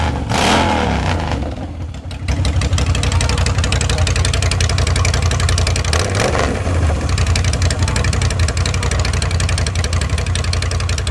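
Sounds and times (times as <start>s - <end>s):
Road King motorcycle engine idling loudly: 1.0s - 11.1s.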